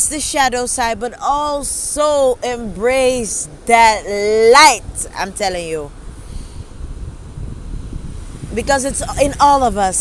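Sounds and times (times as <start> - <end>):
gusty wind rumble buffeting the microphone: 0.0 - 9.9
steady ocean surf: 0.0 - 9.9
speech: 0.1 - 6.0, 8.6 - 9.9.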